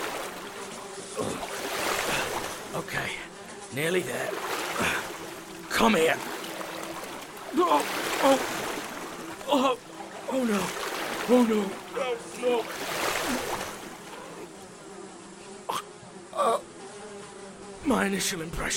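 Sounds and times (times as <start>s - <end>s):
person wading and splashing through water: 0.0s - 2.8s, 4.1s - 14.3s
speech: 2.8s - 5.0s, 5.8s - 6.3s, 7.5s - 8.6s, 9.5s - 13.5s, 17.9s - 18.7s.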